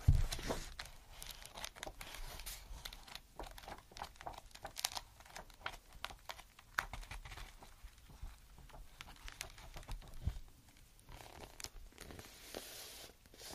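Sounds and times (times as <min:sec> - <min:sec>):
rustling and crinkling of notebook paper pages being turned: 0:00.0 - 0:13.5.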